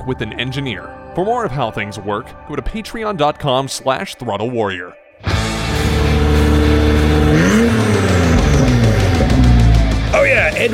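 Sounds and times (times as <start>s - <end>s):
speech: 0.0s - 5.6s, 10.2s - 10.7s
Acura NSX sports car engine roaring while driven: 5.3s - 10.7s.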